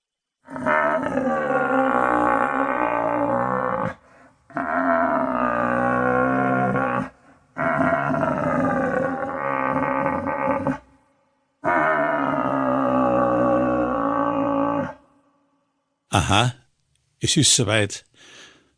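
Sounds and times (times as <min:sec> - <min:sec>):
red deer stag roaring in rut on an alpine meadow: 0:00.5 - 0:10.9, 0:11.6 - 0:15.0
speech: 0:16.2 - 0:16.6, 0:17.2 - 0:18.3.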